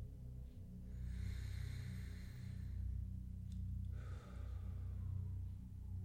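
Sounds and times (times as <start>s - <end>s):
steady low hum: 0.0s - 6.0s
slow deep breath drawn in: 1.0s - 3.0s, 3.9s - 5.3s.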